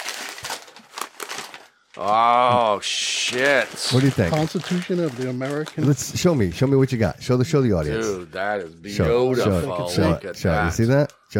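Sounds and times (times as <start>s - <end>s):
Christmas gift wrapping paper torn and pulled open by two men: 0.0s - 6.9s
speech: 2.0s - 11.3s.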